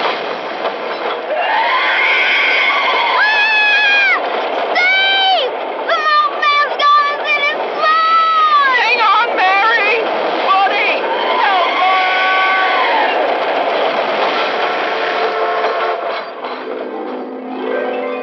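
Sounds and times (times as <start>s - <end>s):
train roaring past on the tracks: 0.0s - 18.2s
frantic voices shouting and screaming: 1.3s - 9.0s, 11.0s - 13.6s.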